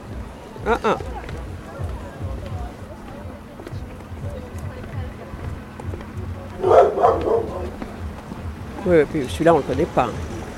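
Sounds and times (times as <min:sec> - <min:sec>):
speech: 0:00.6 - 0:01.2, 0:08.9 - 0:10.3
dog barking outdoors: 0:06.6 - 0:07.8.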